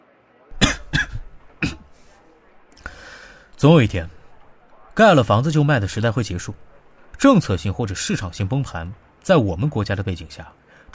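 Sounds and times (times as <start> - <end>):
hoarse coughing: 0.6 - 2.2
speech: 3.6 - 4.2, 5.0 - 10.9.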